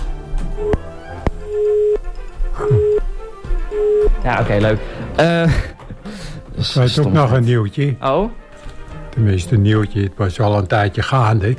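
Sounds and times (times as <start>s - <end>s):
telephone ringing with steady electronic tones: 1.4s - 3.1s, 3.7s - 4.4s
speech: 4.2s - 5.8s, 6.6s - 8.4s, 9.2s - 11.5s.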